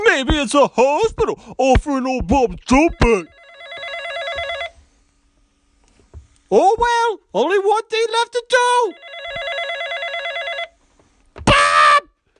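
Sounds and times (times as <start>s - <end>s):
speech: 0.2s - 3.4s, 6.5s - 9.5s
telephone bell ringing with a buzzing electronic trill: 2.8s - 4.8s, 8.8s - 10.8s.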